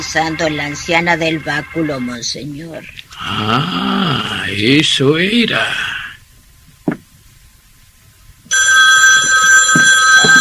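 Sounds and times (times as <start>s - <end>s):
speech: 0.0s - 5.9s
soft knock: 6.8s - 7.1s
telephone bell ringing: 8.5s - 10.4s.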